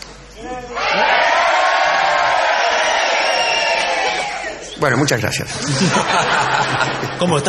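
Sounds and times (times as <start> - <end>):
live crowd at a venue in Madrid Spain shouting together on cue: 0.8 - 4.6
speech: 4.8 - 7.4
laughter: 5.0 - 7.4.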